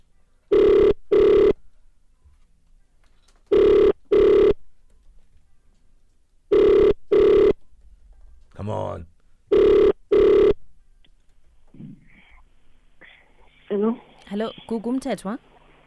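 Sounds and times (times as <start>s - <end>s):
telephone ringback tone on an outgoing call: 0.5s - 1.6s, 3.5s - 4.6s, 6.5s - 7.6s, 9.5s - 10.6s
speech: 14.4s - 15.5s.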